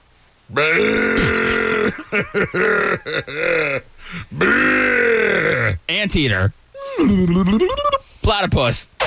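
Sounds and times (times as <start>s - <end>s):
speech: 0.5s - 1.5s, 2.1s - 9.0s
human voice imitating a camel's grunt: 0.5s - 5.9s, 6.8s - 8.0s.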